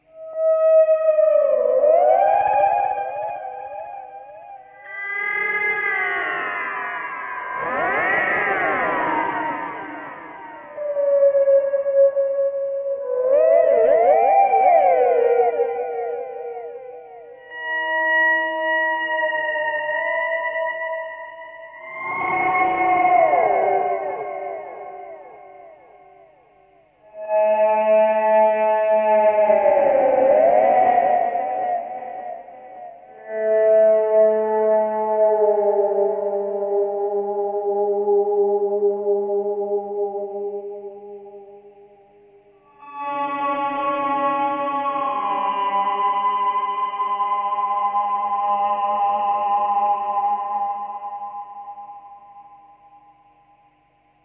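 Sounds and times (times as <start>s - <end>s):
guitar whalesong: 0.0s - 54.2s.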